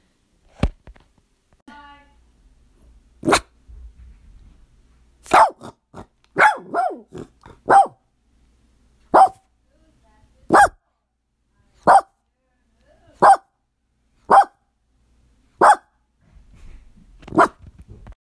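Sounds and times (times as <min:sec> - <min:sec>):
dog barking loudly at a knock on the door: 0:03.2 - 0:03.5, 0:05.2 - 0:05.8, 0:06.4 - 0:08.0, 0:09.1 - 0:09.5, 0:10.5 - 0:10.8, 0:11.8 - 0:12.2, 0:13.2 - 0:13.5, 0:14.2 - 0:14.6, 0:15.6 - 0:16.0, 0:17.3 - 0:17.6.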